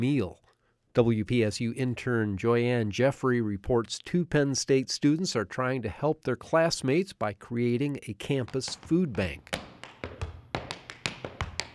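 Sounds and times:
speech: 0.0 - 0.4, 1.0 - 9.6
college student tap dancing for money in tap shoes: 8.2 - 11.7.

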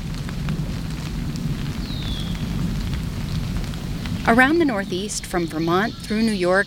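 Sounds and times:
caterpillar droppings falling through neighborhood trees and ticking through leaves: 0.0 - 6.6
faint bird chirp: 1.7 - 2.6, 3.8 - 6.6
speech: 4.2 - 6.6.

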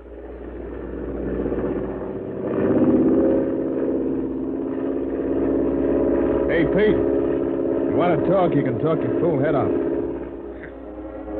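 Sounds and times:
airplane engine in flight throttling down: 0.0 - 11.3
speech: 6.7 - 7.2, 8.0 - 9.9.

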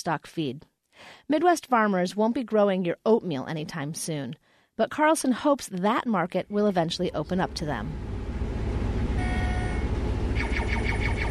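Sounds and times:
speech: 0.0 - 8.2
combine harvester engine rumble driving itself in a field: 7.0 - 11.2
faint whining tone: 7.1 - 11.2.

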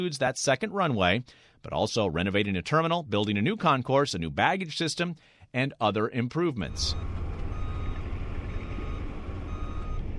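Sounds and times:
speech: 0.0 - 7.2
heavy end loaders pushing dirt and gravel at an airport runway construction site: 6.7 - 10.1
reversing beep: 6.7 - 10.1.

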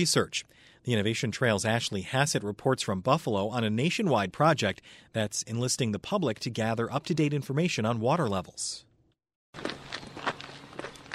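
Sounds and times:
speech: 0.0 - 8.9, 9.5 - 9.8
footsteps walking along a trail in a nature preserve on the edge of Lake Erie: 9.6 - 11.1.

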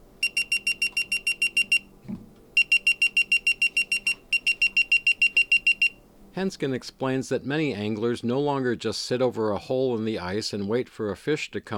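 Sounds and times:
ice fishing tip-up spin alert alarm beeping: 0.2 - 1.8, 2.6 - 6.0
speech: 6.4 - 11.7.

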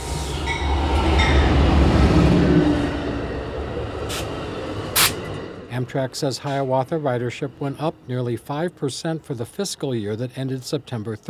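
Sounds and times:
passenger train rumbling and slowing at a station: 0.0 - 11.2
train hissing bursts: 5.0 - 5.3
speech: 5.8 - 11.2.

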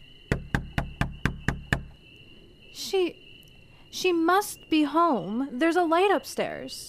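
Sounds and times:
hard knocking on the wooden door of a house: 0.3 - 1.9
speech: 2.8 - 3.2, 4.0 - 6.8.

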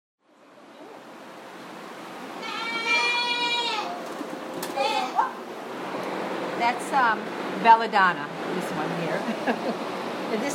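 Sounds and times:
steady hiss of outdoor noise: 0.2 - 10.5
goat bleating on a farm: 2.4 - 4.0
speech: 6.7 - 10.5.

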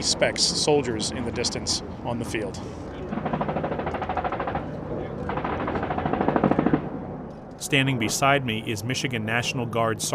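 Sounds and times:
speech: 0.0 - 3.2, 7.6 - 10.1
automatic small-arms fire during a military exercise: 3.1 - 7.0.

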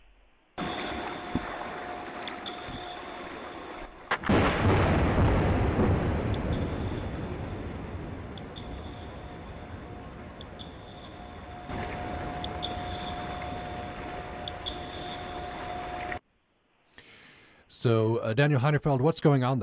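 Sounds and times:
faint tonal whine: 0.6 - 16.2
steady mechanical hum from a ship's engine: 0.6 - 16.2
underwater seismic air gun blast: 0.6 - 16.2
speech: 17.8 - 19.6.

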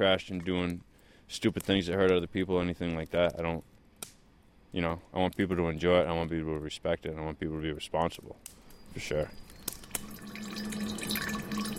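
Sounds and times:
speech: 0.0 - 4.1, 4.7 - 9.4
150-proof clear liquor dripping into an unlabeled jar: 9.6 - 11.7.

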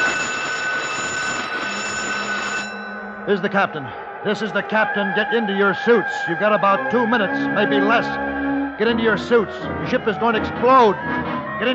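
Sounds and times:
ship's alarm in a continuous harsh electronic tone: 0.0 - 11.7
speech: 3.2 - 11.7.

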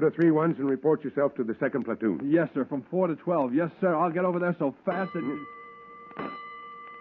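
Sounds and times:
speech: 0.0 - 5.6, 6.2 - 6.4
fire alarm telegraph bell tapping: 4.9 - 6.9.

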